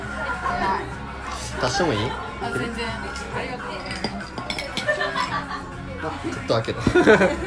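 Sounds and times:
laughter: 0.0 - 1.1, 4.6 - 7.4
several people chattering in a lively room: 0.0 - 7.4
speech: 1.6 - 4.2, 6.0 - 7.4
glasses clinking while drinks are shared: 3.6 - 5.5.

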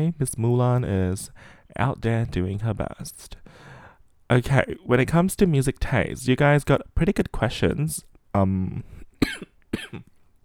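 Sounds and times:
speech: 0.0 - 3.7, 4.3 - 10.1
person coughing: 9.2 - 10.2.

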